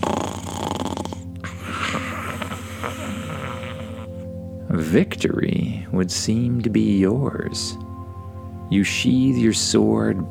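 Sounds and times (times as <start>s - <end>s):
snoring: 0.0s - 4.2s
speech: 4.8s - 7.8s, 8.7s - 10.2s.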